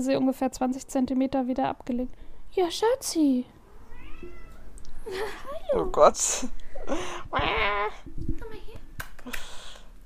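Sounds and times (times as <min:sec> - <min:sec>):
speech: 0:00.0 - 0:03.6, 0:05.1 - 0:08.2
cat meowing loudly: 0:03.7 - 0:04.8.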